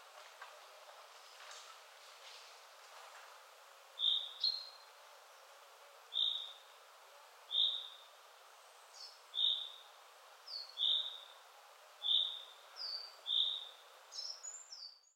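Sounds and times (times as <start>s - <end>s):
faint background hiss: 0.0s - 15.1s
common chaffinch Fringilla coelebs calls: 4.0s - 4.8s, 6.1s - 6.7s, 7.5s - 8.1s, 9.0s - 9.8s, 10.5s - 11.4s, 12.0s - 15.0s.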